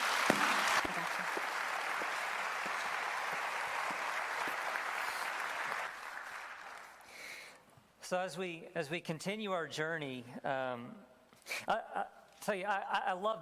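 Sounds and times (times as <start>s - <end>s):
audience applause: 0.0s - 7.1s
speech: 8.1s - 13.4s.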